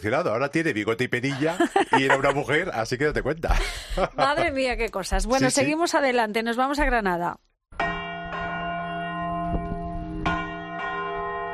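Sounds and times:
speech: 0.0s - 7.5s
laughter: 1.2s - 4.6s
large cathedral church bells ringing in a steady peal: 7.8s - 11.5s.

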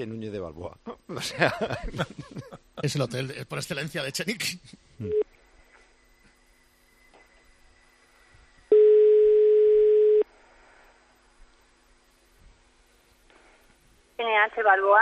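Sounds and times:
speech: 0.0s - 5.2s, 14.5s - 15.0s
laughter: 1.1s - 3.0s
telephone ringing tone of a call to a hotel: 8.7s - 10.2s.

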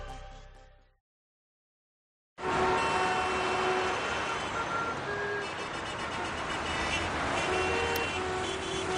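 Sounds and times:
car horns blaring in rush-hour city traffic: 2.4s - 8.9s.

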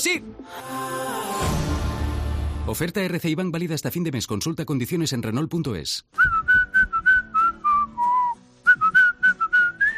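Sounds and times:
speech: 0.0s - 1.5s, 2.6s - 6.6s
person whistling a gentle melody: 6.2s - 9.9s.

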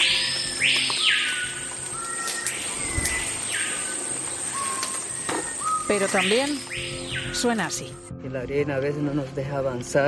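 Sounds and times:
steady hiss: 0.0s - 7.2s
soft bird chirps: 0.0s - 8.0s
birds calling in Amazon rainforest: 0.0s - 8.1s
speech: 5.9s - 10.0s.

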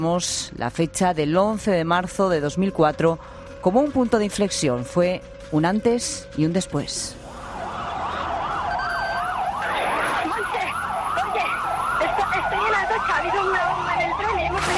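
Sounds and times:
speech: 0.0s - 7.2s
emergency sirens wailing after the March 2004 terrorist bombing in Spain: 1.6s - 14.7s
road traffic rumble: 3.2s - 14.7s.

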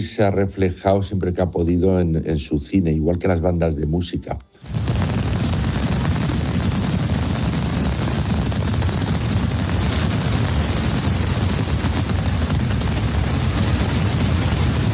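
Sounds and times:
speech: 0.0s - 4.8s
mascletà firecracker barrage during the Fallas festival in Valencia: 4.6s - 14.9s.

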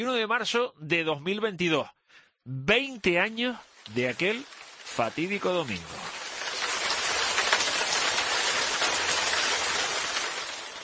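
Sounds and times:
speech: 0.0s - 6.1s
steady dense heavy rain: 3.0s - 10.8s.

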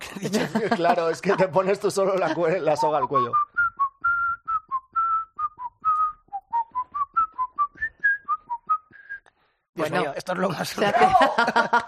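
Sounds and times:
laughter: 0.0s - 3.3s, 10.6s - 11.8s
speech: 0.2s - 3.5s, 9.8s - 11.8s
person whistling a tune: 2.7s - 9.3s.

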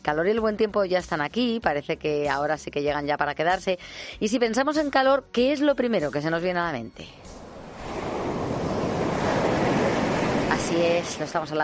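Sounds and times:
speech: 0.0s - 8.0s, 10.7s - 11.6s
ocean waves breaking and washing onto the shore: 7.2s - 11.6s
breezy hiss of wind over the surf: 7.4s - 11.6s.

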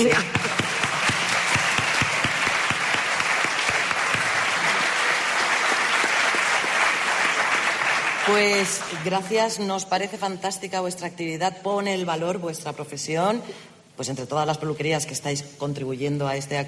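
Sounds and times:
speech: 0.0s - 0.5s, 8.3s - 16.6s
room full of people applauding: 0.0s - 9.2s.

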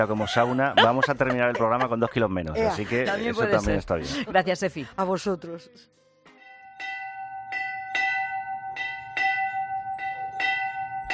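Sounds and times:
laughter: 0.0s - 5.0s
speech: 0.0s - 6.0s
church bell ringing in its bell tower: 6.4s - 11.1s.

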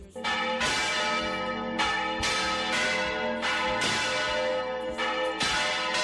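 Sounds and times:
church bells ringing in the village of Viguera in Spain: 0.0s - 6.0s.

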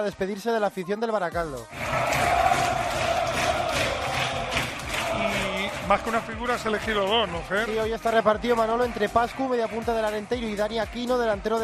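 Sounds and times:
speech: 0.0s - 2.4s, 5.9s - 11.6s
large stadium crowd applauding and cheering an ovation for a returning player: 1.7s - 11.6s.

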